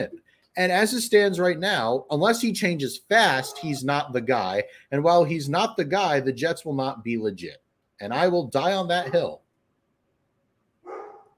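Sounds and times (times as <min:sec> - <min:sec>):
speech: 0:00.0 - 0:09.4
dog barking: 0:03.4 - 0:03.8, 0:09.0 - 0:09.3, 0:10.8 - 0:11.3.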